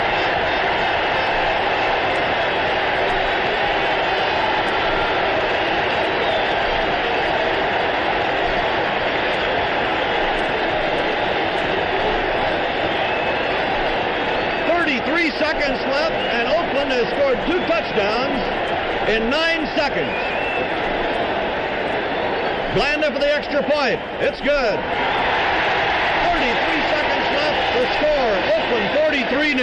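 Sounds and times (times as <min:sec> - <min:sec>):
huge football stadium crowd roaring after a touchdown: 0:00.0 - 0:29.6
speech: 0:19.1 - 0:20.4, 0:22.8 - 0:25.1, 0:27.8 - 0:29.6
faint whistle-like tones: 0:20.0 - 0:20.8.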